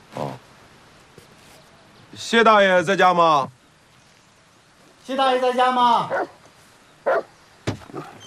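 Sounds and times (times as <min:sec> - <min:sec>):
speech: 0:02.1 - 0:03.6, 0:05.1 - 0:06.3
large wolfdog barking in a courtyard: 0:06.1 - 0:06.4, 0:07.0 - 0:07.3.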